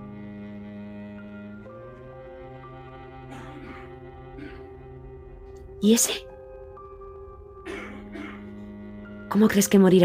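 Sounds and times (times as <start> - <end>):
man coughing outside below window: 3.3 - 4.8, 7.6 - 8.5
speech: 5.8 - 6.3, 9.4 - 10.0.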